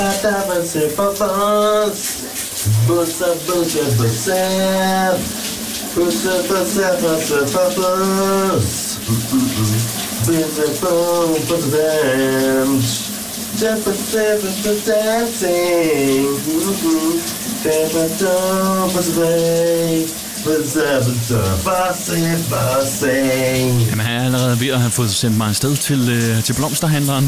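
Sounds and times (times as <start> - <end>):
man singing loudly in a morning shower: 0.0 - 5.4, 6.0 - 25.1
shower water running with a steady hissing spray: 0.0 - 27.2
speech: 0.1 - 5.4, 6.0 - 13.0, 13.6 - 27.2.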